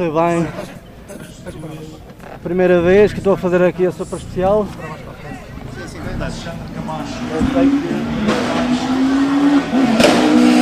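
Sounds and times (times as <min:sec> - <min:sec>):
speech: 0:00.0 - 0:00.8, 0:01.6 - 0:05.0, 0:06.2 - 0:08.1
voices: 0:00.0 - 0:09.4
Kia Picanto GT rally car engine revving on first stage in Funchal: 0:02.2 - 0:10.6.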